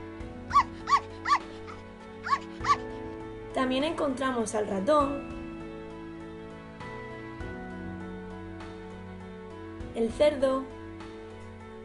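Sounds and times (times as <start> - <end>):
dog barking in short high yips: 0.5 - 2.8
speech: 3.6 - 5.4, 10.0 - 10.8.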